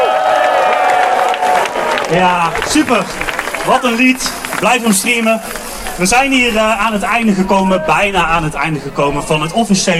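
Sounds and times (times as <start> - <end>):
audience clapping on the stage of a climate march: 0.0 - 7.0
audience shouting on the stage of a climate march: 0.0 - 9.5
speech: 2.1 - 9.9.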